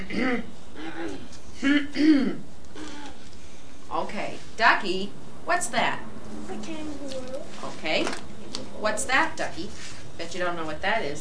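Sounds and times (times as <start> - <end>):
person clearing throat: 0.0 - 3.2
speech: 0.1 - 2.5, 4.0 - 11.1.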